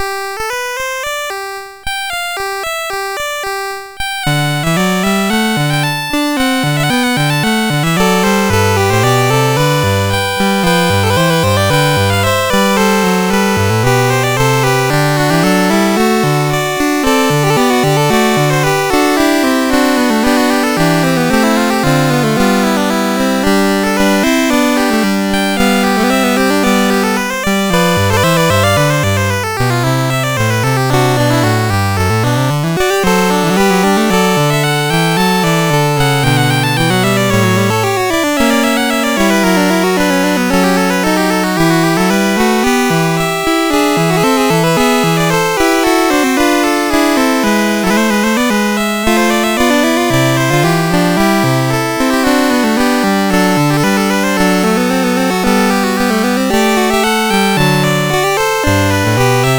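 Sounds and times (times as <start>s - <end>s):
fugue on MOS6581R4 sound chip: 0.0s - 59.5s.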